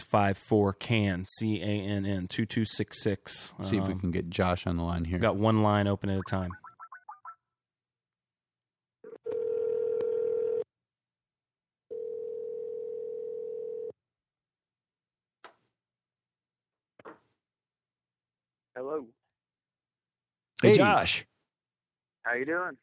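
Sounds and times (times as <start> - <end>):
speech: 0.1 - 6.6, 18.8 - 19.2, 20.6 - 21.3, 22.3 - 22.8
telephone dial tone: 9.1 - 10.7, 11.9 - 14.0.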